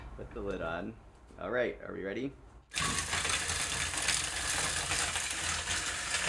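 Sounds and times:
speech: 0.2 - 2.9
small grinder resembling an old-fashioned coffee grinder rumbling: 2.7 - 6.2.

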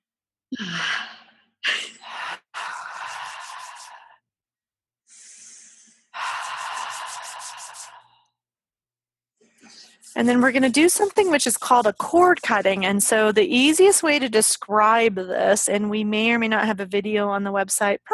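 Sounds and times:
speech: 0.5 - 1.0, 10.2 - 18.1
deep inhales through hands cupped over the face to breathe in an essential oil: 2.0 - 4.2, 5.1 - 8.4.

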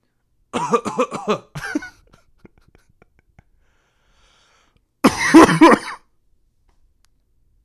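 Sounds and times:
voice imitating a dry hacking cough: 0.6 - 2.0, 5.0 - 6.1.

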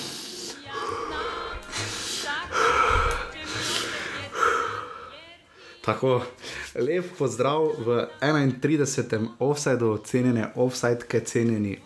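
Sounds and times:
group taking deep breaths in and out together: 0.0 - 6.8
speech: 5.8 - 11.8.

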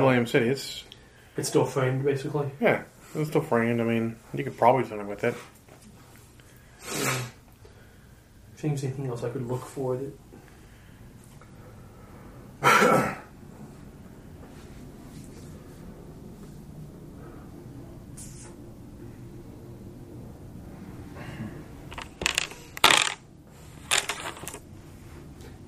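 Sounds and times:
speech: 0.0 - 5.6, 6.8 - 7.3, 8.6 - 10.2, 12.6 - 13.2
low steady hum: 0.0 - 6.8, 7.4 - 25.6
dice clattering as they are rolled: 21.9 - 23.2, 23.9 - 24.6.

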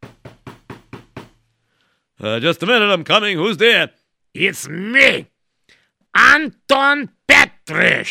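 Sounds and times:
knocking on a wooden door: 0.0 - 1.4
speech: 2.2 - 5.3, 6.1 - 8.0.

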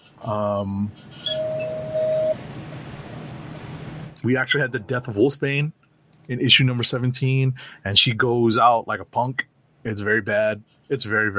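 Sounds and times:
speech: 0.2 - 1.4, 4.2 - 11.3
bell-like chime for a spoiler warning: 1.3 - 2.3.

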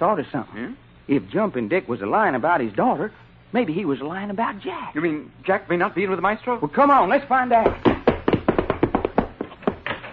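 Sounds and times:
speech: 0.0 - 7.9
rapid insistent knocking on a door: 7.6 - 10.0.

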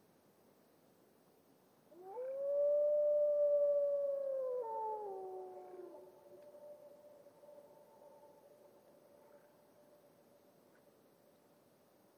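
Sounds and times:
lone grey wolf howling in a glacial valley in Washington: 2.0 - 8.4.

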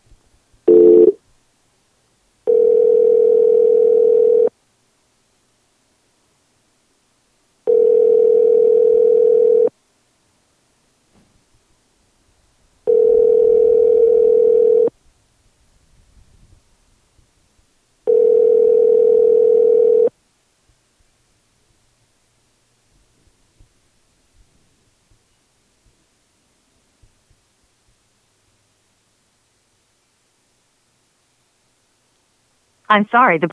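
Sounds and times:
ringback tone of an outgoing telephone call: 0.7 - 1.2, 2.5 - 4.5, 7.7 - 9.7, 12.9 - 14.9, 18.1 - 20.1
speech: 32.9 - 33.5.

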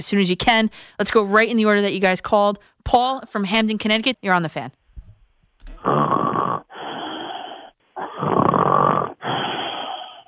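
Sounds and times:
speech: 0.0 - 4.8, 5.8 - 6.1
person faking loud rasping snoring: 5.8 - 10.2.

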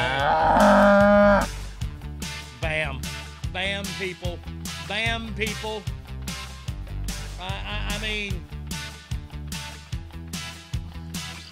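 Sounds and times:
cow mooing: 0.0 - 1.5
speech: 4.0 - 6.0, 7.4 - 8.5.

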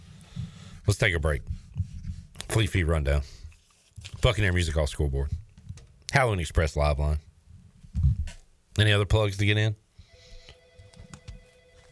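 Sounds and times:
speech: 0.9 - 1.6, 2.5 - 3.4, 4.1 - 5.4, 6.1 - 7.3, 8.8 - 9.8
telephone ringing with a steady electronic tone: 10.1 - 11.8.

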